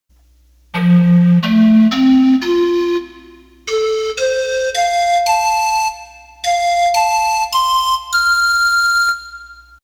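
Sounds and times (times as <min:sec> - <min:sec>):
pan flute: 0:00.8 - 0:09.8.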